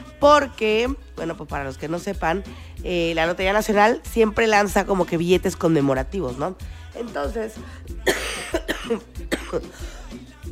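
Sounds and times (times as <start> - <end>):
speech: 0.2 - 10.0
person with a bad cough coughing harshly: 8.0 - 10.5.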